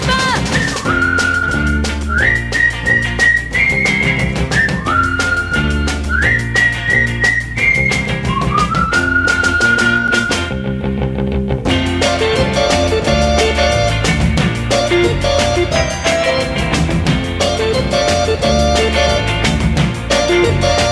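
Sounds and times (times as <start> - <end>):
full band accompaniment with steady drums: 0.0 - 10.6, 11.6 - 20.9
human whistling a cheerful bouncy tune: 0.5 - 10.6.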